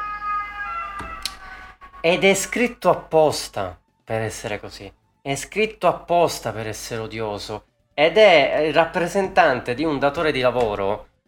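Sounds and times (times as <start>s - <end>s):
emergency vehicle siren: 0.0s - 2.6s
speech: 2.0s - 11.1s.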